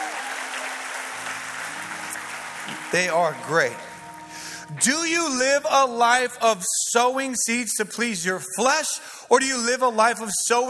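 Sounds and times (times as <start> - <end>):
church audience applauding the worship team: 0.0 - 4.6
speech: 2.9 - 3.9, 4.7 - 10.6.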